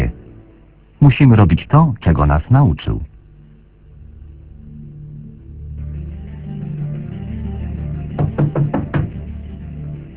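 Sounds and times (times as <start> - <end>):
steady low hum: 0.0 - 10.1
speech: 1.0 - 3.1
sharp knocks on a door: 8.2 - 9.2.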